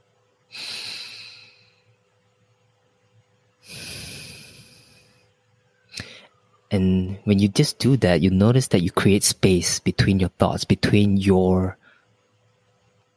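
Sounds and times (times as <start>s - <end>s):
deep breaths: 0.5s - 2.0s, 3.6s - 5.3s, 5.9s - 6.4s
sharp sniff: 0.6s - 1.8s, 3.6s - 5.2s
speech: 6.7s - 11.8s.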